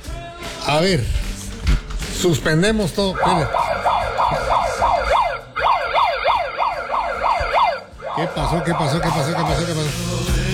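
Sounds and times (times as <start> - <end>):
speech: 0.7 - 1.2, 2.2 - 3.6, 8.2 - 10.3
rumbling vehicle engine: 1.0 - 10.5
police patrol car siren wailing: 3.1 - 10.1.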